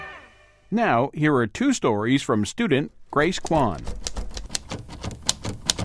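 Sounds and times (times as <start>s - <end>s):
speech: 0.7s - 4.0s
vintage typewriter keys clacking in a typewriter shop in Arlington: 3.2s - 5.8s.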